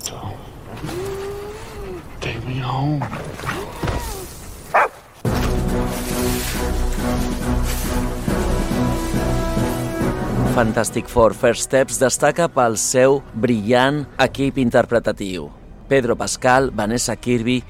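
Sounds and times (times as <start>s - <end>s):
speech: 2.5s - 3.6s, 10.6s - 17.6s
caped dog in a film barking and yelping: 4.7s - 5.0s
loud steady swell of film music: 5.3s - 12.2s.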